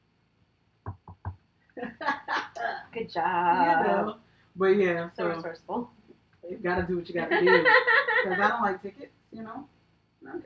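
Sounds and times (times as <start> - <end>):
knocks on a hard surface: 0.9 - 1.4, 6.8 - 7.0
laughter: 1.8 - 2.8, 7.2 - 8.6
speech: 1.8 - 10.4.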